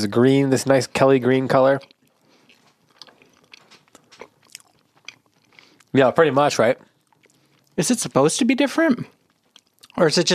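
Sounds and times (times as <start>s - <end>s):
speech: 0.0s - 2.0s, 5.9s - 6.9s, 7.8s - 9.2s, 10.0s - 10.3s
biting and chewing pastel-colored candy corn: 1.7s - 6.0s, 6.8s - 7.8s, 9.1s - 10.1s.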